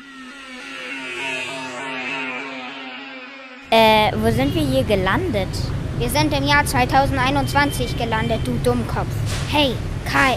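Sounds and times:
homemade time machine powering up with mechanical whir: 0.0s - 3.7s
speech: 3.7s - 10.3s.

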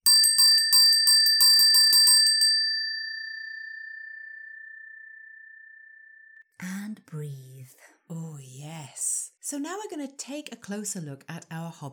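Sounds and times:
small bell rung rapidly: 0.0s - 5.2s
speech: 6.6s - 11.9s.

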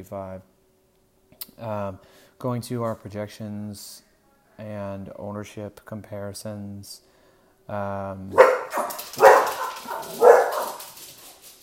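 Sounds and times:
speech: 0.0s - 0.5s, 1.4s - 7.1s, 7.7s - 8.8s
dogs barking: 8.3s - 11.4s.

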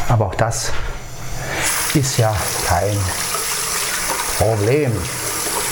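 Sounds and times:
speech: 0.1s - 0.9s, 1.9s - 3.3s, 4.4s - 5.2s
tap water running over washing hands: 1.6s - 5.7s.

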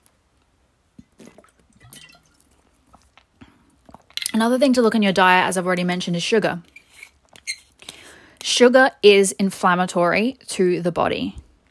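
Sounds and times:
person sipping water with soft wet slurps: 1.0s - 4.3s
speech: 4.4s - 6.8s, 8.6s - 11.4s.

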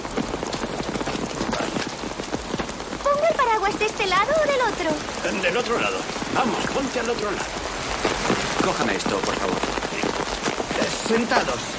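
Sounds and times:
steady rain falling outdoors: 0.0s - 11.7s
speech: 3.5s - 9.8s, 11.1s - 11.7s.

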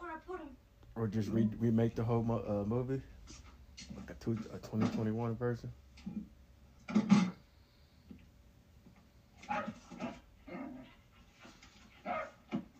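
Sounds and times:
speech: 0.2s - 6.3s
dog barking: 9.4s - 10.2s, 12.0s - 12.5s.

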